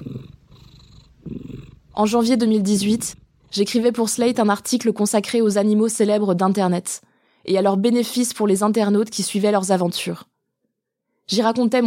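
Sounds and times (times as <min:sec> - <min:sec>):
cat purring: 0:00.0 - 0:04.3
speech: 0:02.0 - 0:10.3, 0:11.3 - 0:11.8.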